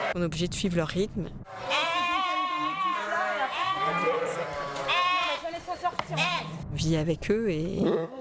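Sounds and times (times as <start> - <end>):
speech: 0.1 - 1.7, 6.1 - 8.1
ewe bleating loudly: 1.5 - 6.6.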